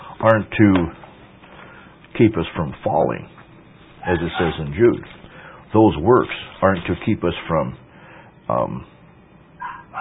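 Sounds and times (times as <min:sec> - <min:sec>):
faint hum: 0:00.0 - 0:09.9
speech: 0:00.2 - 0:01.0, 0:02.2 - 0:03.4, 0:04.0 - 0:07.8, 0:08.5 - 0:08.9
dog barking: 0:04.0 - 0:04.7, 0:09.6 - 0:09.9.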